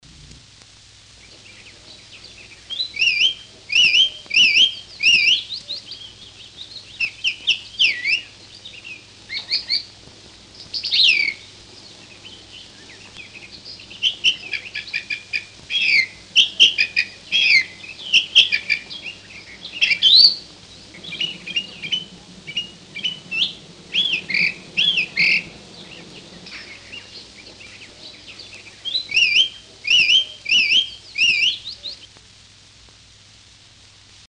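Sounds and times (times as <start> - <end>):
song thrush singing: 0.9 - 32.3.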